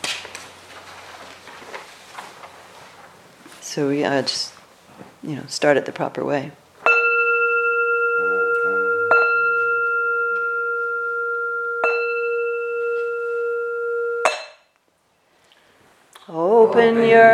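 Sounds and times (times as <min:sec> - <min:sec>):
speech: 0:03.7 - 0:04.6, 0:05.2 - 0:06.6, 0:16.8 - 0:17.3
bright clear bell struck to start a group chant: 0:06.8 - 0:14.7.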